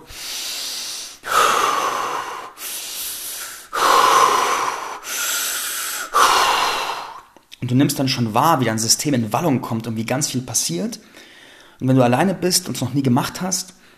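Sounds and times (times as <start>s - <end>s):
deep breathwork inhales and exhales: 0.0s - 7.4s, 11.0s - 11.8s
speech: 7.6s - 13.8s.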